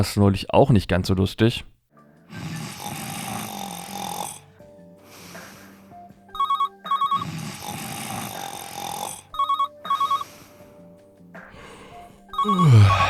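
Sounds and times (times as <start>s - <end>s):
speech: 0.0s - 1.7s
loud heavy snoring: 2.3s - 5.8s, 7.1s - 9.4s, 12.4s - 13.0s
telephone at a workplace switchboard ringing in electronic bursts: 6.3s - 7.3s, 9.3s - 10.4s, 12.3s - 13.0s.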